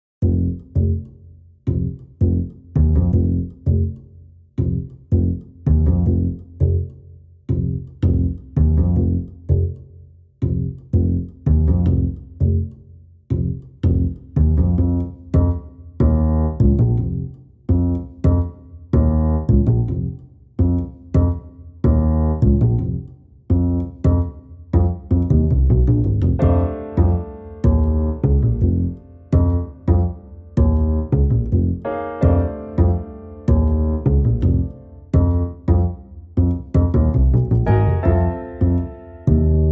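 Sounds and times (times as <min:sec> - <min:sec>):
bass: 0:00.0 - 0:39.7
piano: 0:25.7 - 0:36.0, 0:36.7 - 0:39.7.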